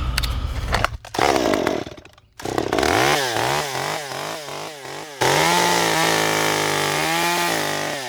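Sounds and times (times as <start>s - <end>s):
carver's chainsaw revving and carving wood: 0.6s - 8.0s.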